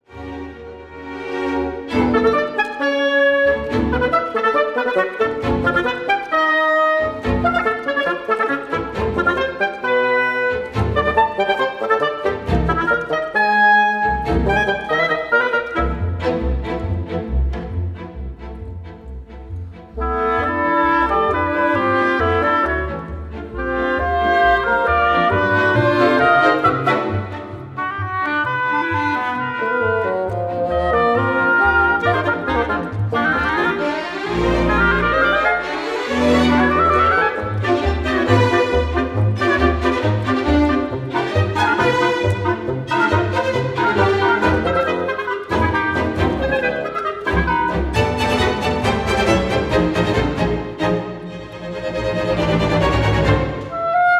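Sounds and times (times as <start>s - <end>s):
reed trio and strings playing a concertino allegro: 0.1s - 54.1s.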